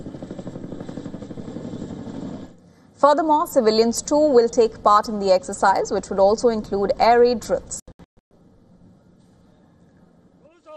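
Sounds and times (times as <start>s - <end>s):
military helicopter rotor thumping during emergency deployment drills: 0.0s - 10.6s
speech: 3.0s - 7.8s.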